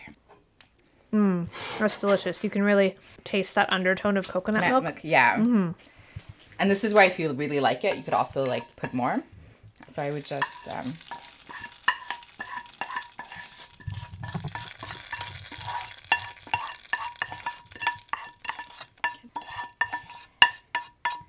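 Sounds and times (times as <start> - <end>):
speech: 1.1 - 5.9, 6.6 - 9.3, 9.9 - 11.2
metal utensil stirring with scrapes and clinks: 7.7 - 9.1, 9.8 - 21.2
food sizzling in a hot pan: 7.8 - 21.2.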